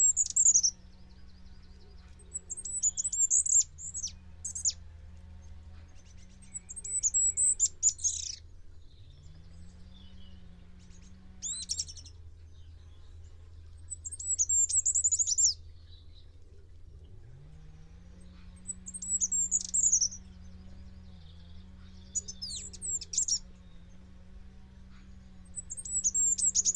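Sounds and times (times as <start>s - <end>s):
bird chirping: 0.0s - 26.7s
low droning hum: 0.0s - 26.7s.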